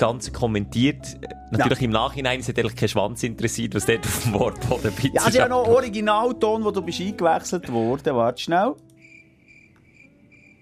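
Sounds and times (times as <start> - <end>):
speech: 0.0 - 8.9
crickets chirping: 9.0 - 10.6.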